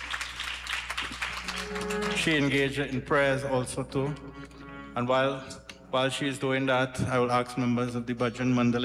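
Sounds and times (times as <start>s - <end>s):
audience applauding a senator: 0.0s - 2.7s
speech: 1.7s - 4.4s, 5.0s - 8.8s.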